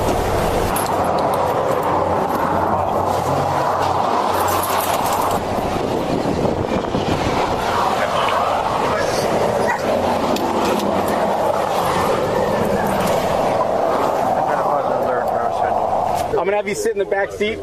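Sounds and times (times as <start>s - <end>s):
loud steady rumble of traffic or an idling engine: 0.0s - 17.6s
voices talking: 7.7s - 17.6s
police dog barking while sniffing a vehicle for narcotics: 9.6s - 10.0s
speech: 16.6s - 17.6s.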